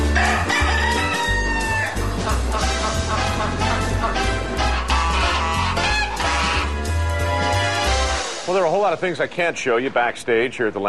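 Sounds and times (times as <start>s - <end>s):
dense steady music track with thumping low bass line: 0.0s - 8.4s
rooster crowing: 0.1s - 2.0s
speech: 8.8s - 10.8s.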